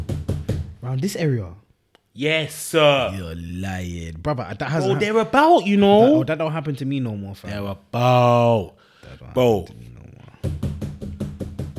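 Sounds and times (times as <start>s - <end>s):
person pounding on a door: 0.0s - 0.8s, 10.4s - 11.7s
speech: 0.9s - 1.6s, 2.2s - 10.6s.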